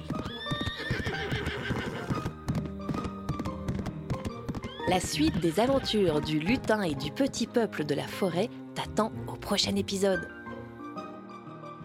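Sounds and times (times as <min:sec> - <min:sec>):
galloping horse hoofbeats: 0:00.0 - 0:07.5
horse whinnying: 0:00.1 - 0:02.4, 0:04.5 - 0:05.8
speech: 0:04.9 - 0:10.4.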